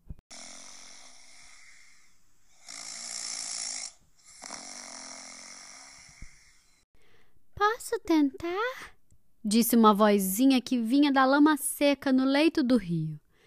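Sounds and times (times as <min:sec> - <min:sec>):
loud rasping snoring: 0:00.3 - 0:06.8
speech: 0:07.9 - 0:13.2.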